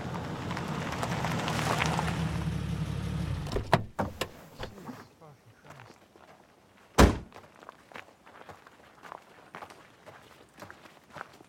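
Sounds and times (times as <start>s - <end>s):
car engine of a car pulling up beside a red truck: 0.0s - 4.9s
sharp clunks: 7.0s - 7.3s.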